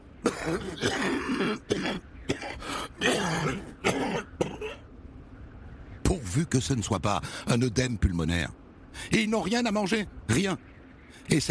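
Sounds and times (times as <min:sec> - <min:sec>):
man coughing: 0:00.2 - 0:04.8
throat-clearing: 0:00.2 - 0:04.8
speech: 0:00.4 - 0:04.8, 0:06.1 - 0:11.5.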